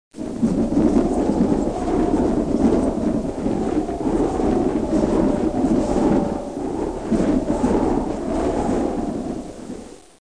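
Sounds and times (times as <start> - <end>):
wind: 0.1 - 10.2.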